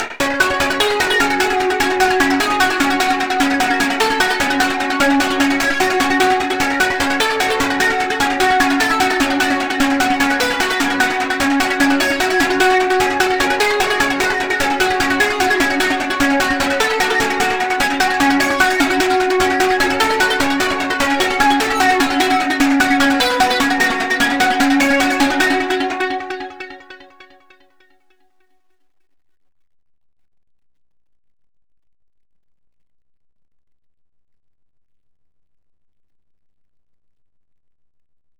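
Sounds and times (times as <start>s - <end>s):
sequenced synth lead: 0.0s - 27.6s.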